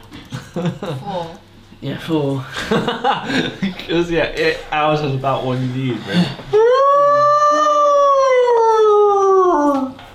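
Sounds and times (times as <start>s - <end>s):
laughter: 0.3s - 1.3s, 2.5s - 3.8s
speech: 0.6s - 6.7s
animal howling in the prairie: 6.5s - 10.0s.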